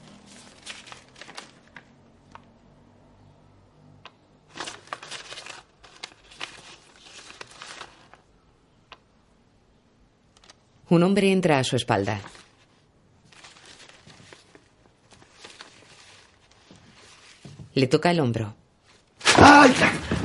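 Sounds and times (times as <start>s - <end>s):
handwritten letters on notebook sheets rustling: 0.0s - 2.4s, 4.5s - 8.3s, 10.3s - 10.7s, 12.0s - 17.8s, 18.8s - 20.2s
speech: 10.9s - 12.4s, 17.8s - 18.6s, 19.4s - 20.2s.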